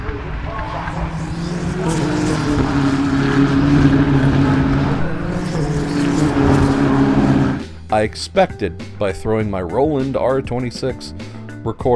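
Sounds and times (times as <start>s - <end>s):
muffled engine drone from a car with side exhaust: 0.0s - 7.8s
speech: 8.0s - 11.9s.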